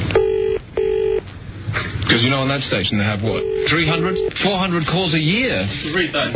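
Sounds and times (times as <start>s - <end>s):
electronic ringback tones through a phone line: 0.2s - 1.3s, 3.3s - 4.4s
speech: 2.1s - 6.3s.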